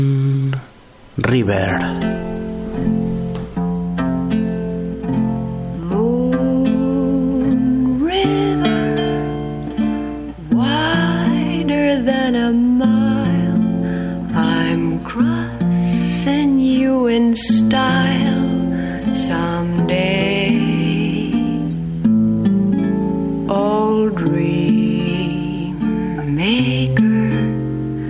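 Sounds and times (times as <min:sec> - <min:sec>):
soft steady guitar accompaniment: 0:00.0 - 0:28.0
speech: 0:01.2 - 0:02.3
woman singing a slow tender ballad: 0:05.7 - 0:21.8, 0:23.4 - 0:28.0.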